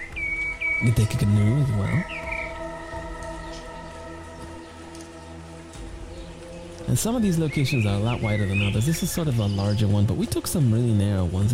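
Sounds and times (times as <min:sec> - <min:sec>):
low sustained tonal drone: 0:00.0 - 0:11.5
steady morning rain: 0:00.0 - 0:11.5
speech: 0:00.8 - 0:02.3, 0:06.9 - 0:11.5.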